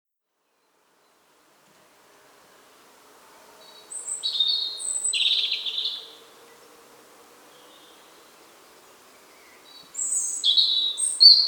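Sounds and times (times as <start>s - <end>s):
European robin singing: 3.6s - 6.2s, 7.5s - 11.4s.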